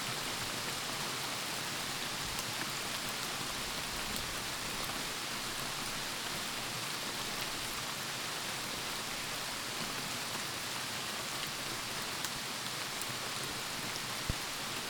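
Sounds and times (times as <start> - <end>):
steady rain: 0.0 - 14.8.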